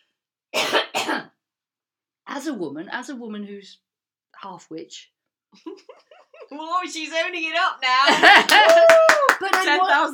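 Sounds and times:
person coughing: 0:00.6 - 0:01.4
speech: 0:02.4 - 0:10.1
laughter: 0:08.0 - 0:09.6.

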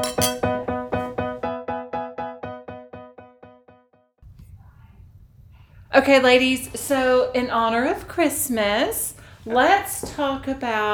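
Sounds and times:
glasses clinking in a toast: 0:00.0 - 0:00.5
speech: 0:06.0 - 0:10.9.

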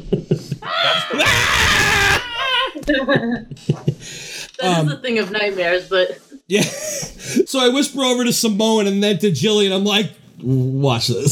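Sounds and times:
voice imitating a frightened child's scream: 0:00.6 - 0:02.8
speech: 0:02.9 - 0:11.3.

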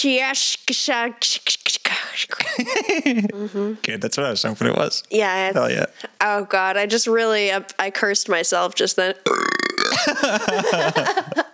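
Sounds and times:
speech: 0:00.0 - 0:11.5
laughter: 0:02.4 - 0:04.9, 0:09.9 - 0:11.5
long loud burp: 0:09.2 - 0:10.2.

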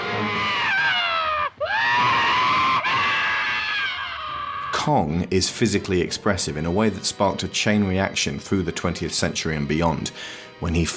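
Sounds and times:
man's blood-curdling screams from an old film: 0:00.0 - 0:04.9
speech: 0:04.9 - 0:10.9
man gasping for breath: 0:10.2 - 0:10.5.

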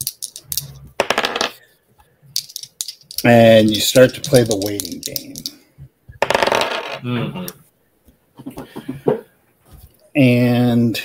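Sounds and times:
dice clattering across a hard tabletop: 0:00.0 - 0:01.6, 0:02.3 - 0:05.6, 0:06.2 - 0:07.0
speech: 0:03.2 - 0:05.6, 0:07.0 - 0:07.6, 0:10.2 - 0:11.0.

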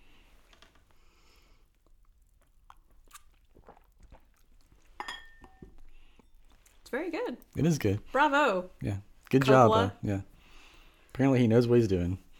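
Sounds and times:
quiet noise: 0:00.0 - 0:12.3
wine glasses clinking together in a toast: 0:05.0 - 0:05.8
speech: 0:06.9 - 0:10.3, 0:11.2 - 0:12.2.

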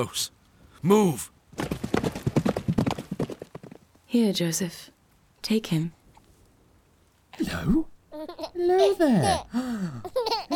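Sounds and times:
speech: 0:00.0 - 0:01.7, 0:04.1 - 0:06.0, 0:07.4 - 0:10.5
horse hooves clip-clopping: 0:01.5 - 0:04.0.

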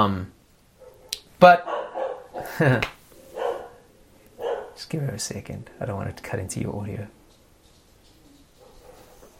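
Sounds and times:
speech: 0:00.0 - 0:00.4, 0:01.4 - 0:01.8, 0:02.4 - 0:03.0, 0:04.8 - 0:07.2
neighbour's dog barking: 0:00.8 - 0:02.6, 0:03.3 - 0:04.8, 0:08.6 - 0:09.2.

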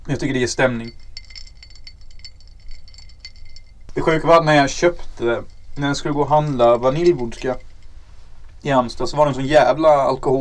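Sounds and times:
low steady rumble: 0:00.0 - 0:09.5
speech: 0:00.1 - 0:01.1, 0:04.0 - 0:07.7, 0:08.6 - 0:10.3
ice cubes clinking against drinking glasses: 0:00.7 - 0:08.0.

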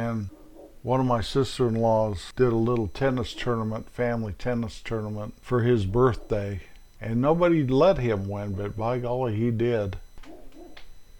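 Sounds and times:
speech: 0:00.0 - 0:10.0
dog barking outside a window: 0:00.3 - 0:00.8, 0:10.2 - 0:10.8.

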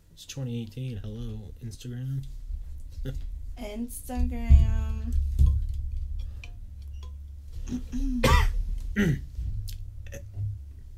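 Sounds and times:
low rumble: 0:00.0 - 0:10.9
speech: 0:00.2 - 0:02.4, 0:03.0 - 0:05.6, 0:07.7 - 0:09.3
person hacking coughs with something stuck in throat: 0:07.7 - 0:09.3.

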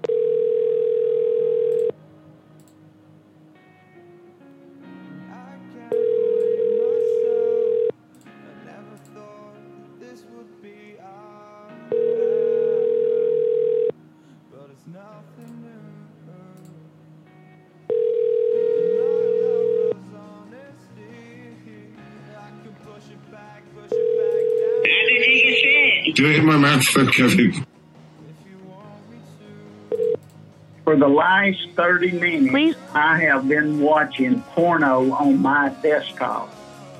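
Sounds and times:
phone line ringback tone while calling a cell phone: 0:00.0 - 0:02.0, 0:05.9 - 0:08.0, 0:11.9 - 0:14.0, 0:17.9 - 0:20.0, 0:23.9 - 0:26.5, 0:29.9 - 0:30.2
speech: 0:26.2 - 0:27.7, 0:30.9 - 0:36.6.

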